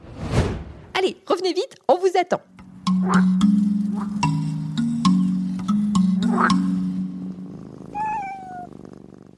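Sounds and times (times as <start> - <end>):
speech: 1.0 - 4.4, 6.3 - 6.7
Pallas's cat purring while being scratched in the Himalaya: 3.9 - 9.3
Pallas's cat high falling meow-like call: 7.9 - 8.7.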